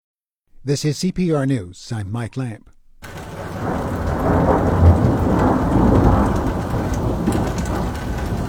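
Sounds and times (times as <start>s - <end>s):
speech: 0.6s - 2.8s
deep rolling rumble of thunder: 3.0s - 8.4s
steady heavy rain in a thunderstorm: 3.0s - 8.4s.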